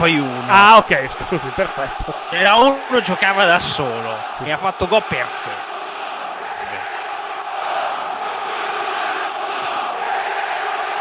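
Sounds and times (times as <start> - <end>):
speech: 0.0 - 5.7
football fans shouting in stadium: 0.0 - 11.0.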